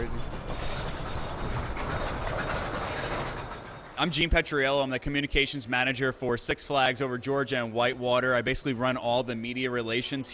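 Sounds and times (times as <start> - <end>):
mine train roller coaster rattling along its track: 0.0 - 5.5
speech: 4.0 - 10.3.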